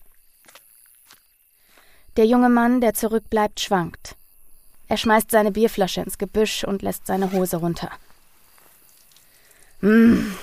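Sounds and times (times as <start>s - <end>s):
soft footsteps on a hard surface moving away: 0.0s - 1.3s
steady hiss: 0.0s - 10.4s
speech: 2.2s - 4.2s, 4.9s - 8.0s, 9.8s - 10.4s.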